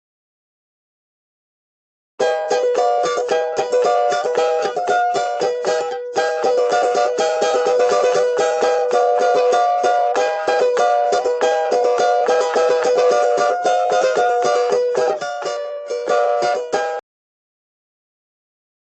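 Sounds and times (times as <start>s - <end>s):
balalaika: 2.2s - 17.0s.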